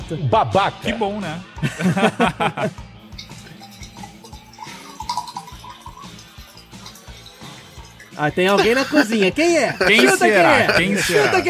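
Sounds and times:
speech: 0.1s - 2.9s, 8.2s - 11.4s
laughter: 1.6s - 2.8s, 8.4s - 11.4s
tap water running into a small drinking glass: 3.0s - 11.3s.

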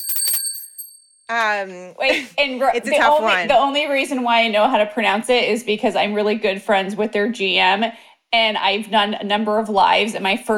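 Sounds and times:
bell ringing: 0.0s - 1.2s
speech: 1.3s - 10.5s.

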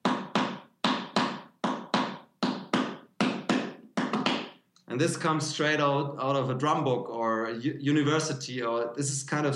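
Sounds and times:
hand taps in unaccented five-note groups: 0.0s - 4.6s
speech: 4.9s - 9.5s.

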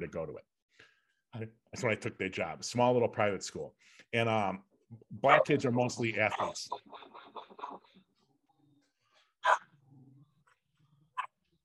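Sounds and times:
speech: 0.0s - 8.0s
dog barking: 9.4s - 9.6s.

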